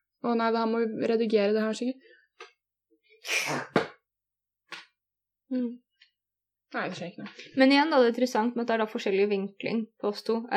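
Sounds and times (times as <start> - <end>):
speech: 0.2 - 2.5, 3.2 - 3.9, 5.5 - 5.8, 6.7 - 10.5
attempted sneeze: 3.2 - 4.0.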